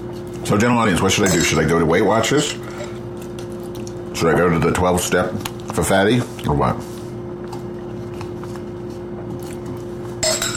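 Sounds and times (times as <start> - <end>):
low steady hum: 0.0 - 10.5
speech: 0.4 - 2.9, 4.2 - 6.9
spoon clinking against a jar of peanut butter and jelly: 10.2 - 10.5.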